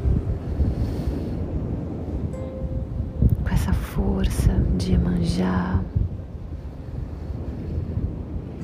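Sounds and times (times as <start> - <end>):
gusting wind at a beach: 0.0 - 8.6
ocean surf at a beach: 0.0 - 8.6
woman speaking softly: 3.4 - 6.0
speech: 3.7 - 6.0.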